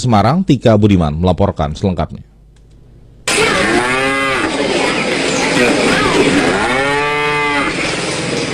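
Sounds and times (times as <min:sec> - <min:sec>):
speech: 0:00.0 - 0:02.3
dairy cow mooing: 0:03.3 - 0:04.6, 0:05.8 - 0:08.0
rushing noise: 0:03.3 - 0:08.5.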